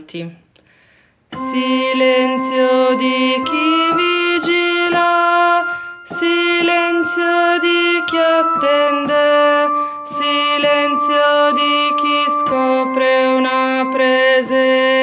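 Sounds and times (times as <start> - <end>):
contraltos singing a verse: 1.3 - 15.0.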